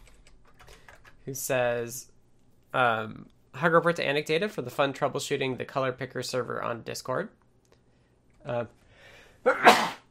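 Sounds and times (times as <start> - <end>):
speech: 1.3 - 2.1, 2.7 - 7.4, 8.4 - 8.8, 9.4 - 9.9
person sneezing: 9.4 - 10.0.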